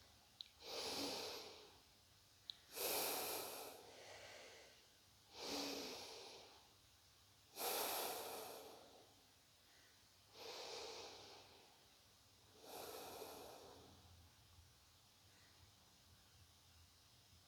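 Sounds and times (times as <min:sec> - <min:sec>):
slow deep breaths in and out in a breathing exercise: 0:00.6 - 0:01.9, 0:02.7 - 0:06.8, 0:07.6 - 0:11.8, 0:12.6 - 0:14.0.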